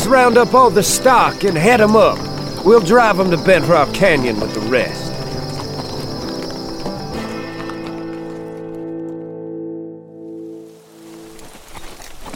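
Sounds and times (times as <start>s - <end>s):
horse whinnying: 0.0s - 8.5s
horses' hooves clip-clopping as riders come into a town: 0.0s - 9.4s, 10.7s - 12.3s
speech: 0.1s - 5.1s.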